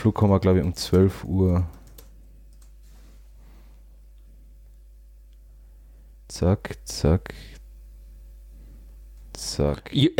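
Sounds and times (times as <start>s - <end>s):
speech: 0.0s - 1.8s, 6.3s - 7.6s, 9.4s - 10.1s
low steady hum: 0.0s - 10.1s
typing on a computer keyboard: 0.2s - 2.8s.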